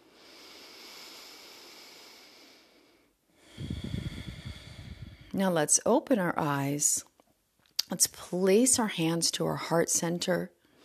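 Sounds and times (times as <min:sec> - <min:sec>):
Ujjayi-style breathing through the nose during a guided relaxation: 0:00.0 - 0:05.4
speech: 0:05.4 - 0:07.1, 0:07.9 - 0:10.6.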